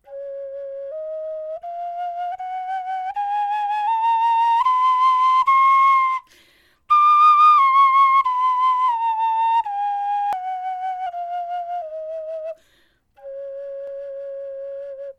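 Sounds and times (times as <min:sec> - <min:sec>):
bone flute playing a scale: 0:00.0 - 0:06.3, 0:06.9 - 0:15.1.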